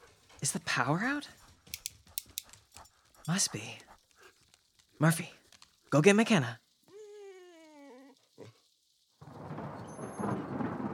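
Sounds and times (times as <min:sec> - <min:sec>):
speech: 0:00.4 - 0:01.4, 0:03.2 - 0:03.9, 0:05.0 - 0:06.6
dog whining: 0:06.9 - 0:08.6
rushing rain-like roar: 0:07.9 - 0:10.9
thunder crash from a storm with lightning: 0:09.2 - 0:10.9.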